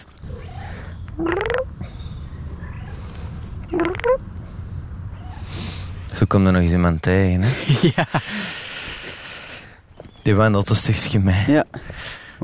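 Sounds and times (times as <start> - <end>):
steady low outdoor rumble: 0.0 - 11.8
speech: 1.2 - 1.5, 6.2 - 8.6, 10.3 - 12.4
cat meowing: 3.7 - 4.2
laughter: 7.4 - 8.6.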